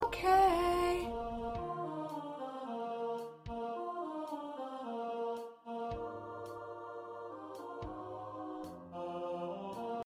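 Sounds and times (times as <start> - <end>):
choir ensemble singing parts: 0.0 - 10.0.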